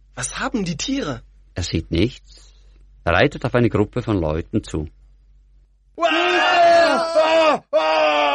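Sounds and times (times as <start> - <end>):
speech: 0.2 - 5.0
group of people yelling and screaming: 6.0 - 8.3.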